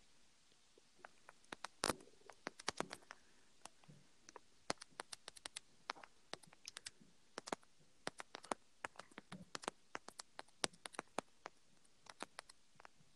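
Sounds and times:
keys clacking on a computer keyboard during a web search: 1.5s - 11.3s, 12.1s - 12.6s.

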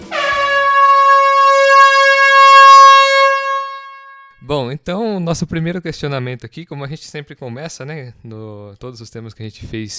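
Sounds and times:
air horn blast: 0.0s - 4.4s
speech: 4.5s - 9.9s.

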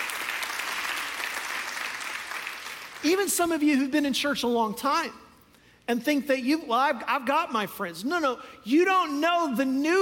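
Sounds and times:
congregation clapping hands: 0.0s - 3.3s
speech: 3.0s - 5.2s, 5.9s - 10.0s.

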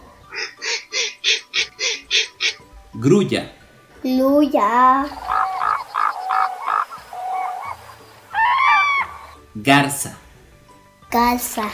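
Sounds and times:
duck quacking: 0.3s - 2.6s, 5.1s - 9.4s
speech: 3.0s - 5.2s, 9.6s - 10.2s, 11.1s - 11.7s.

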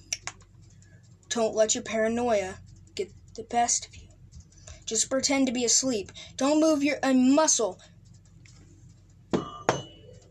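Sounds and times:
speech: 1.3s - 4.0s, 4.9s - 7.9s
sharp solid knocking from outside: 9.3s - 10.2s.

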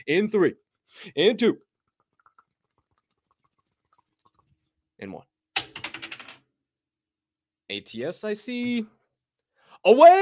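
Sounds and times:
speech: 0.0s - 1.7s, 5.0s - 5.3s, 7.7s - 9.0s, 9.8s - 10.2s
dice clattering across a hard surface: 5.6s - 6.4s.

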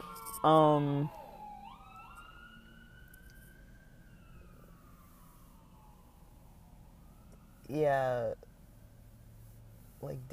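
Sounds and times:
emergency vehicle siren sliding downward: 0.0s - 9.4s
speech: 0.4s - 1.2s, 7.7s - 8.5s, 10.0s - 10.3s.

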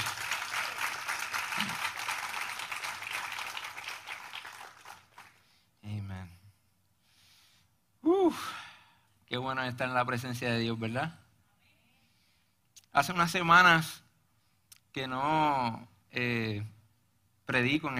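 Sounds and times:
large crowd applauding: 0.0s - 5.5s
person sighing: 8.0s - 9.0s
speech: 9.3s - 11.2s, 13.0s - 14.0s, 14.9s - 16.8s, 17.5s - 17.9s.

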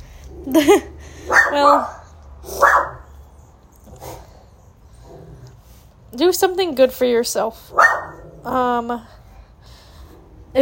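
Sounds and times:
speech: 0.4s - 2.9s, 6.1s - 9.2s
puppies barking: 0.6s - 3.2s, 7.7s - 8.3s.

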